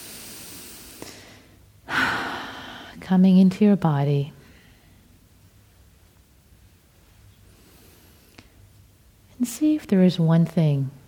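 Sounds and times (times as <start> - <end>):
deep breath in and out during a closing meditation: 0.0 - 3.0, 4.4 - 5.2
speech: 3.0 - 4.4, 9.6 - 11.0.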